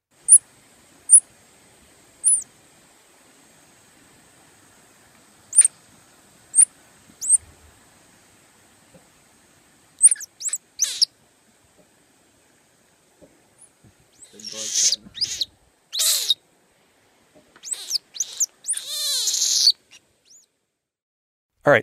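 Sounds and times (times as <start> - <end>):
saki monkey squeaky calls: 2.2 - 2.4, 5.5 - 5.7, 6.6 - 7.4, 10.0 - 11.1, 14.2 - 16.4, 17.6 - 20.4.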